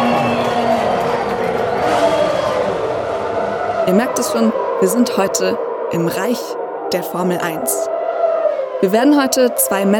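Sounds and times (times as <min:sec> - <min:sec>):
shouts: 0:00.0 - 0:02.9
large crowd cheering in grandstands: 0:00.0 - 0:09.9
speech: 0:03.9 - 0:08.0, 0:08.8 - 0:09.9.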